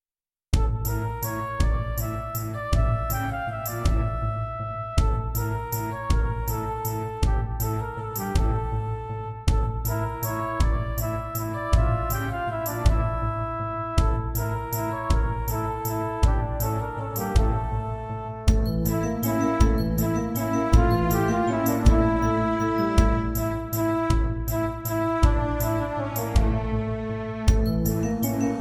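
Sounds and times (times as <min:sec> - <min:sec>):
Roland JV-1080 synthesizer: 0:00.7 - 0:28.5.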